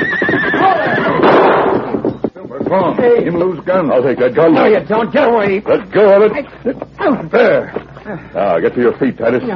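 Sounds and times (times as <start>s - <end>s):
big stallion whinnying: 0.0s - 2.2s
speech: 2.7s - 9.5s.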